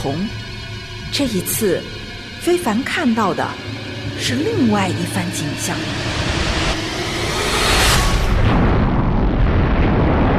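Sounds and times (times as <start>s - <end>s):
speech: 0.0s - 0.5s, 1.1s - 6.3s
loud sustained explosion roar: 5.8s - 10.3s.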